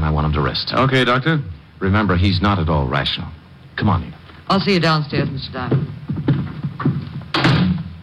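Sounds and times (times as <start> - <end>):
speech: 0.1 - 6.0
door shutting with a solid thud: 7.3 - 7.9.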